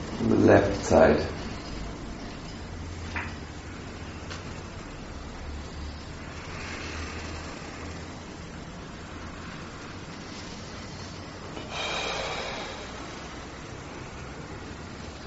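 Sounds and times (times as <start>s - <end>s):
steady hiss of noise: 0.0s - 15.2s
speech: 0.2s - 1.4s
deep inhaling and exhaling during a guided breathing exercise: 3.9s - 15.2s.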